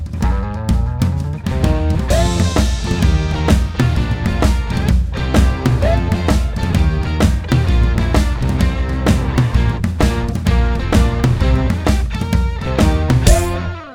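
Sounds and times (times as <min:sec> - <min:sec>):
alt guitar: 0:00.1 - 0:13.9.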